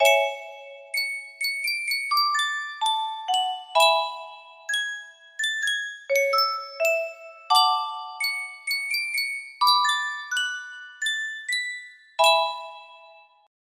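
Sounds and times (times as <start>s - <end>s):
music box melody: 0.0s - 13.5s.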